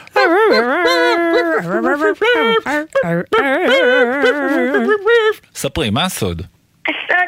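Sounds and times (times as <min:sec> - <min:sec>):
puppy whimpering and howling: 0:00.0 - 0:05.4
speech: 0:01.6 - 0:07.0.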